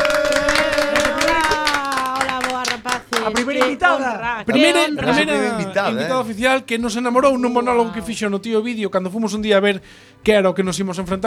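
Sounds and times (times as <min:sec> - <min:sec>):
people whooping and cheering: 0:00.0 - 0:02.6
crowd applauding: 0:00.0 - 0:04.1
speech: 0:03.3 - 0:11.2.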